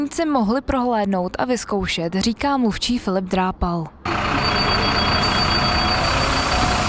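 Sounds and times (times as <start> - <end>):
speech: 0.1 - 4.0
diesel bus engine idling at a bus exhibition on Letná plain in Prague: 4.1 - 6.8.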